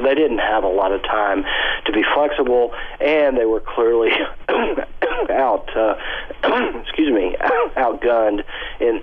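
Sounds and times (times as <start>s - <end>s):
speech: 0.1s - 9.0s
harsh coughing: 4.1s - 5.5s, 6.1s - 8.0s
throat clearing: 6.4s - 6.8s, 7.5s - 7.8s.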